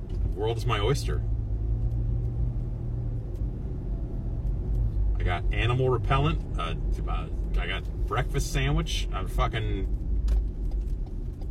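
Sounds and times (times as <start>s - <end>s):
low vehicle rumble at a gas station: 0.0s - 11.4s
speech: 0.4s - 1.3s, 5.2s - 10.0s.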